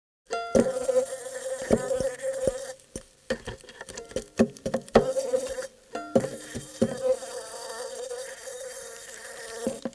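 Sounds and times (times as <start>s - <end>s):
fly trapped in a violin: 0.5s - 2.8s, 5.0s - 9.9s.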